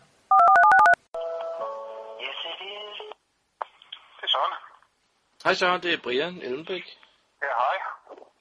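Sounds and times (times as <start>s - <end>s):
phone keypad tones dialing a number: 0.3s - 1.0s
speech: 5.4s - 7.7s.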